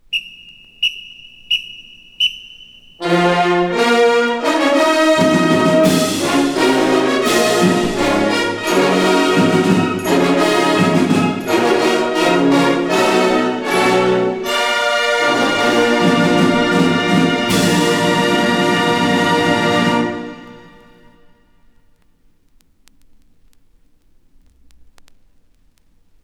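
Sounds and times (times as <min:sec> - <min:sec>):
traditional fanfare: 0:03.0 - 0:21.1.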